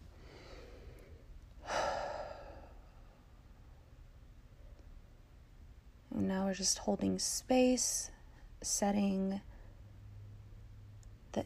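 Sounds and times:
deep breath taken as part of a breathing exercise: 0.2s - 3.3s
speech: 6.2s - 9.5s.

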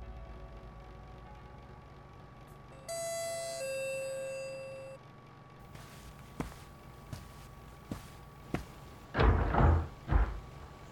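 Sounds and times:
two-tone doorbell chime: 2.8s - 5.0s
footsteps approaching: 5.6s - 9.1s.

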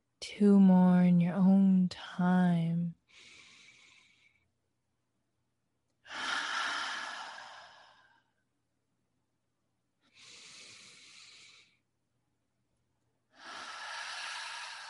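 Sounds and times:
speech: 0.4s - 3.3s
slow deep breaths during a guided breathing exercise: 3.1s - 4.6s, 6.0s - 8.4s, 10.0s - 11.8s, 13.3s - 14.8s.

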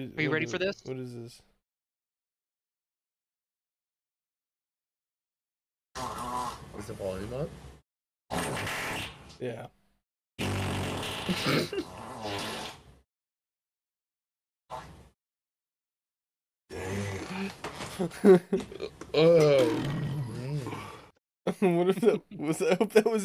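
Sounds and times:
speech: 0.0s - 1.5s, 6.0s - 7.7s, 8.3s - 9.8s, 11.3s - 12.5s, 16.7s - 20.1s, 21.5s - 23.2s
loud rumbling fart: 6.0s - 6.7s, 8.3s - 9.2s, 10.4s - 12.9s, 16.7s - 17.9s, 19.3s - 20.8s
people laughing: 18.0s - 18.9s, 21.5s - 22.9s.

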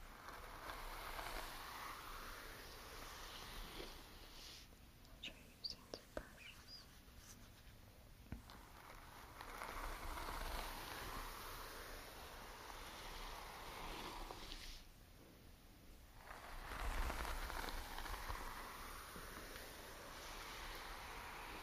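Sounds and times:
silky hair being brushed: 0.0s - 4.7s, 5.3s - 14.9s, 16.1s - 21.6s.

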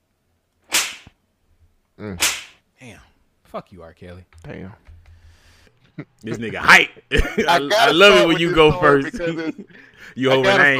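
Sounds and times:
loud slap sound effect: 0.7s - 1.2s, 2.2s - 2.6s
speech: 2.0s - 4.9s, 6.0s - 10.7s
laughter: 5.8s - 10.7s.

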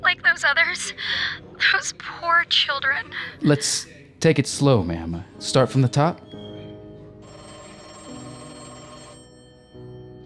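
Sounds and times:
speech: 0.4s - 6.3s
police department telephone bell ringing: 7.2s - 10.2s.

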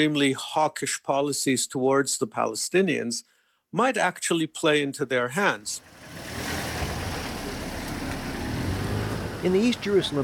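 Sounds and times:
speech: 0.0s - 6.5s, 9.4s - 10.2s
car engine rumbling in a narrow street: 5.8s - 10.2s
street noise: 5.8s - 10.2s.

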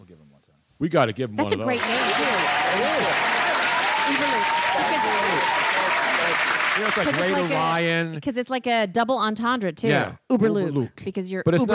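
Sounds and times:
speech: 0.1s - 3.4s, 4.0s - 5.7s, 6.3s - 11.7s
people cheering: 1.4s - 7.9s
crowd clapping: 1.5s - 7.9s.

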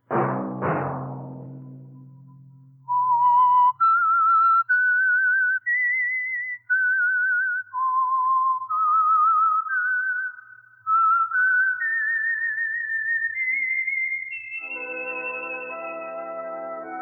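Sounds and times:
person whistling a vibrato-laden melody: 2.8s - 17.0s
orchestral chord: 14.6s - 17.0s.

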